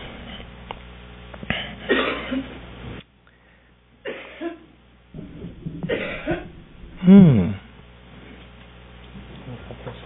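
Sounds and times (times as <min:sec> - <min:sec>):
woman coughing: 0:01.6 - 0:02.5, 0:04.0 - 0:04.7, 0:05.8 - 0:07.6
speech: 0:07.1 - 0:07.5.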